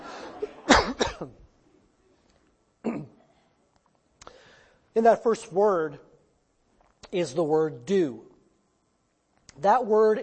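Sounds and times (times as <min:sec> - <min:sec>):
quiet room noise: 0:00.0 - 0:10.2
person coughing harshly: 0:00.3 - 0:01.4, 0:02.8 - 0:03.3
speech: 0:05.0 - 0:06.1, 0:07.1 - 0:08.3, 0:09.6 - 0:10.2.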